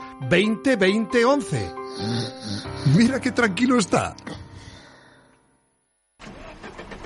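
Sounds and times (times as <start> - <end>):
speech: 0.2 - 4.4
broken-down automatic car engine cranking and sputtering: 6.2 - 7.0.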